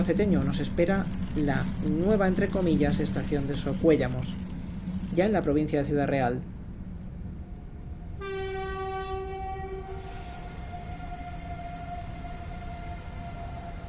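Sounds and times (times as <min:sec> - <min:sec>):
speech: 0:00.0 - 0:04.5, 0:05.2 - 0:06.6
steady rail rumble of a passenger train at a station: 0:00.0 - 0:13.8
passenger train horn blast at a station in Ciudad Real province, Spain: 0:08.2 - 0:13.8.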